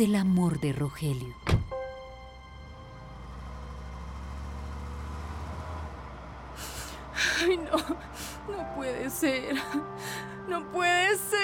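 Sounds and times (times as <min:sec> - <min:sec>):
speech: 0:00.0 - 0:01.6, 0:09.0 - 0:11.4
car engine running: 0:02.0 - 0:08.8.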